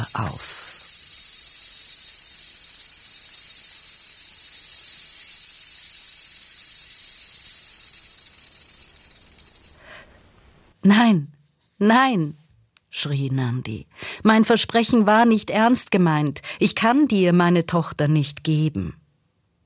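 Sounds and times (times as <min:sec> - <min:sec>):
snake hissing: 0:00.0 - 0:10.2
speech: 0:10.9 - 0:12.4, 0:13.0 - 0:19.0.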